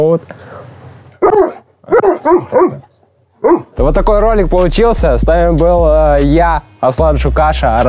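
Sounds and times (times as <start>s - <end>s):
speech: 0.0s - 0.5s, 1.3s - 7.8s
dogs barking: 1.2s - 3.8s.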